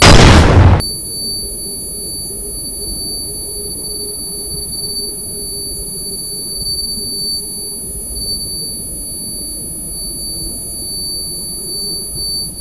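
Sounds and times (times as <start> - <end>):
flashbang explosion: 0.0 - 0.8.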